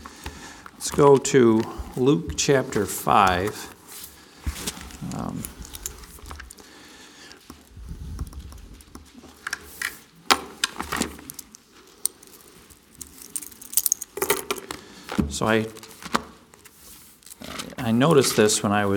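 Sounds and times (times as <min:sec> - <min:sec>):
speech: 0:00.8 - 0:03.8, 0:05.0 - 0:05.6, 0:15.4 - 0:15.8, 0:17.8 - 0:18.9
soft rustling and shuffling movement: 0:02.8 - 0:06.8, 0:07.6 - 0:18.9
keys jangling in a pocket: 0:11.2 - 0:14.6.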